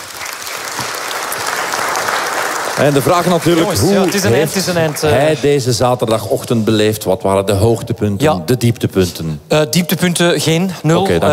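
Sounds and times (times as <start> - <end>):
audience applause: 0.0 - 5.5
speech: 2.8 - 11.3.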